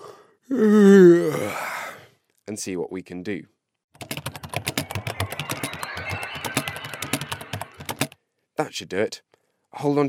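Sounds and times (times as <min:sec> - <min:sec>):
human yawn: 0:00.0 - 0:02.0
speech: 0:00.5 - 0:01.7, 0:02.6 - 0:03.6, 0:08.6 - 0:10.0.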